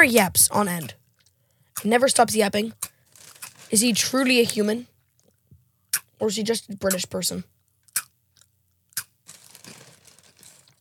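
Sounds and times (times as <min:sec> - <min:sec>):
speech: 0:00.0 - 0:01.0, 0:01.8 - 0:02.9, 0:03.7 - 0:04.9, 0:06.2 - 0:07.6
crunchy chewing of a mouthful of dry cereal: 0:02.8 - 0:03.9, 0:07.8 - 0:10.7.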